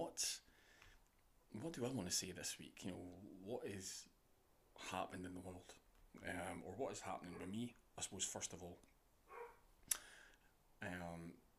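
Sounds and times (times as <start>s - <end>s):
speech: 1.5s - 4.2s, 4.8s - 8.9s, 10.8s - 11.4s
dog barking: 7.3s - 7.6s, 9.3s - 9.6s.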